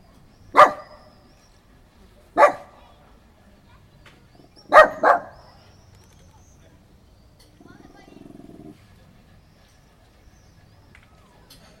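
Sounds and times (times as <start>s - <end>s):
female pet dog barking menacingly: 0.6s - 1.0s, 2.4s - 2.8s, 4.6s - 5.4s.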